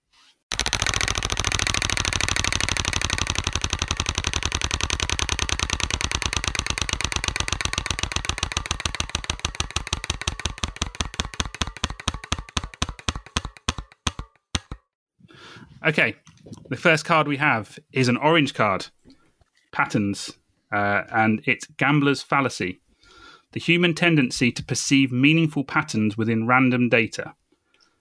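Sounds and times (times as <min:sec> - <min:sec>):
spinning prize wheel clicking against its pointer: 0:00.5 - 0:14.8
speech: 0:15.8 - 0:19.0, 0:19.8 - 0:22.8, 0:23.6 - 0:27.4.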